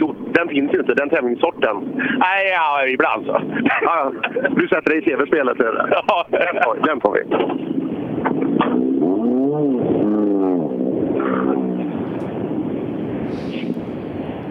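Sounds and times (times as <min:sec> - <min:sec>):
speech: 0:00.4 - 0:07.7
laughter: 0:03.3 - 0:05.0, 0:05.6 - 0:07.2
Volkswagen Golf 3 car engine revving: 0:07.2 - 0:14.0.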